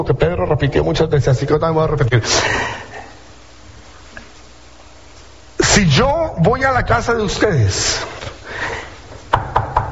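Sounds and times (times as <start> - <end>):
speech: 0.0 - 2.8, 5.8 - 8.8
quick sharp knocks on a door: 9.3 - 9.8.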